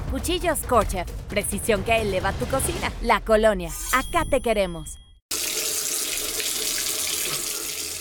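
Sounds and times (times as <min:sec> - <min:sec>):
speech: 0:00.1 - 0:05.0
kitchen tap water pouring into a sink: 0:05.3 - 0:07.9.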